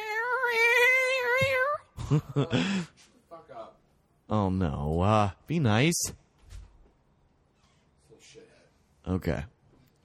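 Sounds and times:
cat meowing: 0:00.0 - 0:01.8
speech: 0:01.4 - 0:03.0, 0:04.3 - 0:06.2, 0:09.0 - 0:09.6.

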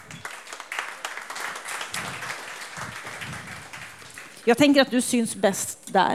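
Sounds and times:
audience applauding warmly: 0:00.0 - 0:04.8
speech: 0:04.4 - 0:06.1.

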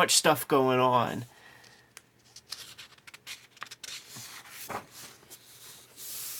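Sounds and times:
speech: 0:00.0 - 0:01.3
hand rubbing across textured paper: 0:02.4 - 0:06.3.

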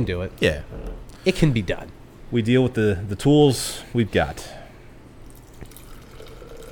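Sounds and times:
speech: 0:00.0 - 0:04.6
beer pouring from a can into a glass: 0:05.3 - 0:06.6.

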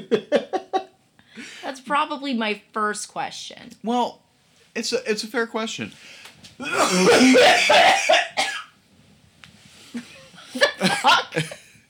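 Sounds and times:
speech: 0:00.0 - 0:00.4, 0:01.9 - 0:04.2, 0:04.8 - 0:08.5, 0:11.0 - 0:11.6
harsh drawn-out coughing fit: 0:06.6 - 0:08.7.

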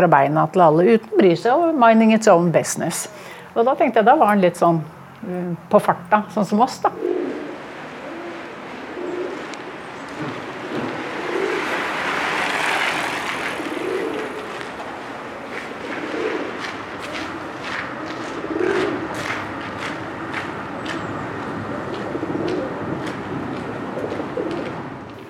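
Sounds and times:
speech: 0:00.0 - 0:07.2
pigeon cooing among people from a train: 0:06.8 - 0:12.5, 0:13.1 - 0:14.7, 0:15.5 - 0:19.4, 0:21.6 - 0:24.9.

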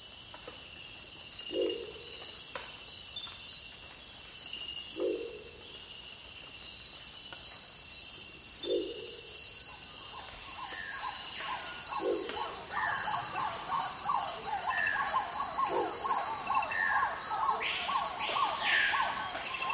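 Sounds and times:
high insect drone in the Amazon rainforest: 0:00.0 - 0:19.7
low hooting bird calls in the Amazon rainforest: 0:10.0 - 0:19.7.

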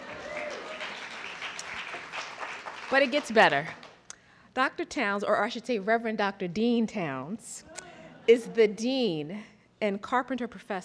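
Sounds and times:
audience applause: 0:00.0 - 0:03.9
speech: 0:02.9 - 0:03.8, 0:04.6 - 0:07.7, 0:08.3 - 0:10.8.

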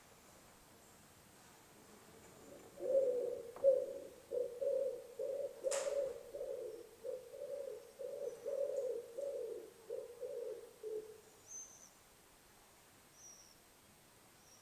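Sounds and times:
bird cooing: 0:02.4 - 0:11.9.

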